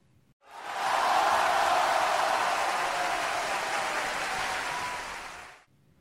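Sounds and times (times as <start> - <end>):
large crowd roaring inside an arena: 0.4 - 5.6.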